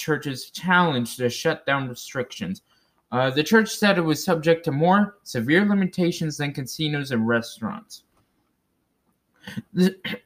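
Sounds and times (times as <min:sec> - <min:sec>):
speech: 0:00.0 - 0:08.1, 0:09.4 - 0:10.2
person coughing after swallowing water down the wrong pipe: 0:09.4 - 0:10.2.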